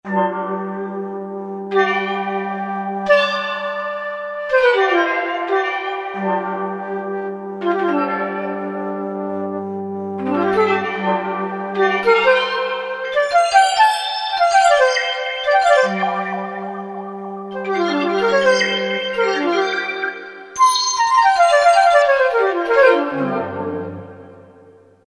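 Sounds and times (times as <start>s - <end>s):
water flute patch on a synthesizer: 0.1s - 25.0s.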